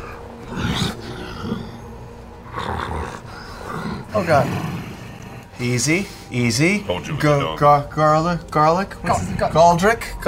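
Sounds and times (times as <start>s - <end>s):
person growling and snarling like a wolf: 0.0s - 5.5s
speech: 4.2s - 4.7s, 5.6s - 10.2s.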